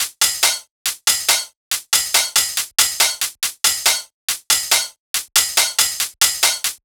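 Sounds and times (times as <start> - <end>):
dubstep cymbals drum loop at 140 BPM: 0.0 - 6.8.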